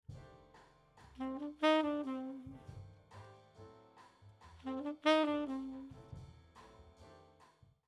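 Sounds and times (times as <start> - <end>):
raw saxophone: 1.2 - 2.8, 4.6 - 6.1.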